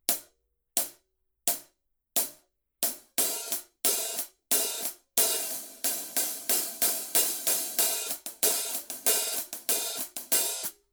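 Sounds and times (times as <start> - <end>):
heavy hi-hat pattern on a purple Color Sound 900 14 hi-hat: 2.8 - 10.8.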